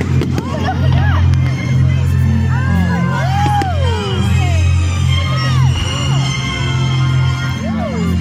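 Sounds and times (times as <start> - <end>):
big outdoor crowd murmuring and cheering: 0.0 - 8.1
steady low rumble: 0.0 - 8.1
rising and falling firework whistles: 3.1 - 8.1.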